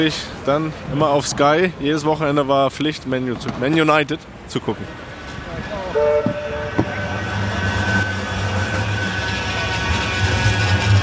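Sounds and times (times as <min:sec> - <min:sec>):
speech: 0:00.0 - 0:06.4
tram rumbling past in Manchester: 0:04.5 - 0:11.0
short two-tone tram horn blast: 0:05.9 - 0:11.0.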